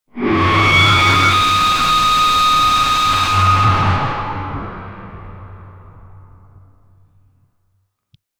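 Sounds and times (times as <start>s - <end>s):
intense piercing metallic creature: 0.2s - 6.7s.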